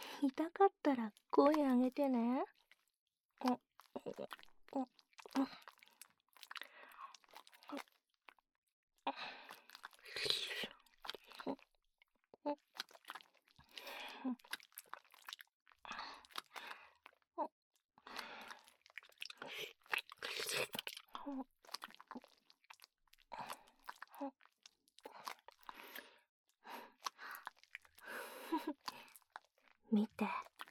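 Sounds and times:
speech: 0:00.2 - 0:02.6, 0:03.4 - 0:05.7, 0:07.7 - 0:07.9, 0:12.4 - 0:12.6, 0:14.2 - 0:14.4, 0:21.3 - 0:21.5
wet biting and nibbling mouth sounds on someone's neck: 0:03.4 - 0:08.4, 0:09.5 - 0:11.6, 0:12.6 - 0:15.5, 0:16.2 - 0:17.2, 0:18.1 - 0:26.0, 0:26.9 - 0:28.0, 0:28.7 - 0:29.6, 0:30.4 - 0:30.6.

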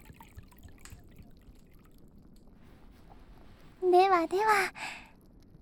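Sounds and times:
hot sake pouring into small sake cup: 0:00.0 - 0:02.0
speech: 0:04.1 - 0:05.0.

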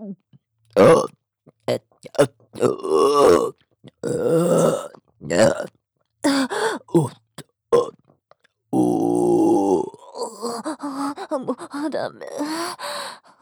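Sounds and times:
speech: 0:00.1 - 0:01.1
grunting, groaning vocal sounds: 0:00.8 - 0:01.1, 0:02.1 - 0:07.2, 0:08.8 - 0:12.5
loud burps: 0:00.8 - 0:05.8, 0:06.8 - 0:08.1, 0:08.8 - 0:10.6.

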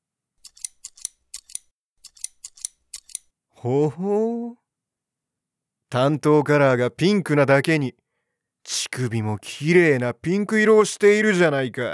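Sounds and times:
scissors cutting through costume fabric: 0:00.4 - 0:03.3
speech: 0:03.6 - 0:04.6, 0:05.9 - 0:08.0, 0:08.6 - 0:11.9.

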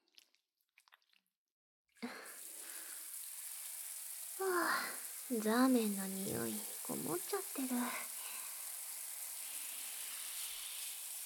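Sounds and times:
soft wet clicks and squishes: 0:00.0 - 0:01.3
shower water running with hissing spray: 0:02.0 - 0:11.2
speech: 0:04.6 - 0:08.1.

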